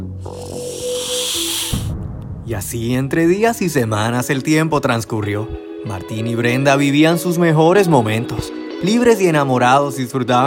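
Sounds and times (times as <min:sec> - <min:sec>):
low sustained musical drone: 0:00.0 - 0:02.3
snake hissing: 0:00.2 - 0:02.0
speech: 0:02.5 - 0:10.4.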